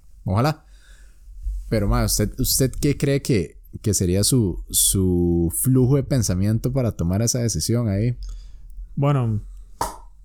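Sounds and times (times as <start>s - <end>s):
quiet hum: 0.0s - 10.2s
speech: 0.3s - 0.6s, 1.7s - 8.4s, 9.0s - 9.5s
single sharp pop or crack: 9.8s - 10.1s.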